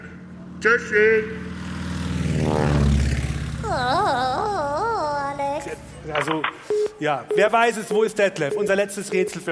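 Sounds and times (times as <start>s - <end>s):
speech: 0.6s - 1.5s, 5.7s - 9.5s
propeller airplane droning as it passes: 1.2s - 6.1s
wavering warbling tone: 3.6s - 6.1s.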